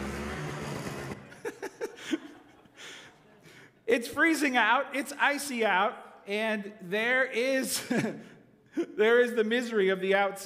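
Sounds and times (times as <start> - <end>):
scraping noises: 0.0 - 1.4
small snowblower engine roaring: 0.0 - 1.4
laughter: 1.1 - 3.8
speech: 3.9 - 10.4.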